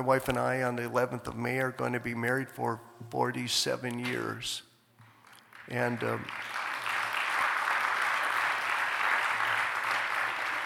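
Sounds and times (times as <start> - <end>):
speech: 0.0 - 4.7, 5.7 - 6.6
audience applause: 5.5 - 10.6.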